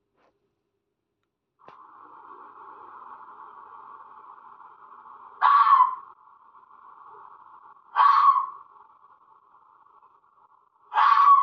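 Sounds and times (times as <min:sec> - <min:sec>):
fox animal sounds: 0:05.4 - 0:06.1, 0:07.8 - 0:08.7, 0:10.8 - 0:11.4.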